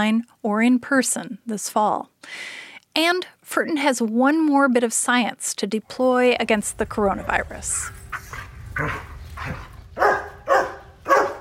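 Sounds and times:
speech: 0:00.0 - 0:10.2
dog barking: 0:08.2 - 0:11.3.

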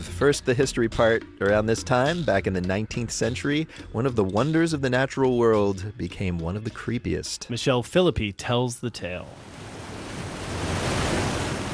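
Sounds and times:
speech: 0:00.2 - 0:09.6
rushing water of Niagara Falls roaring in North America: 0:09.5 - 0:11.7.

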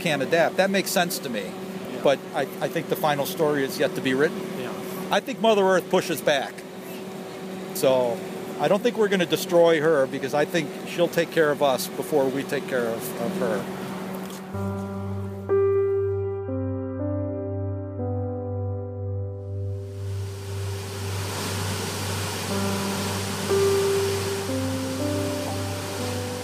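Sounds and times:
speech: 0:00.0 - 0:06.6, 0:07.8 - 0:13.8, 0:14.5 - 0:14.7
gentle tonal music: 0:14.5 - 0:26.4
waterfall rushing: 0:20.0 - 0:26.4.

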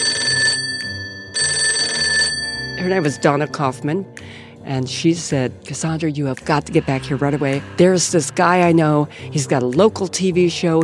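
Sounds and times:
telephone bell ringing for an incoming call at a low-end motel in Aspen, Colorado: 0:00.0 - 0:03.8
speech: 0:02.8 - 0:10.8.

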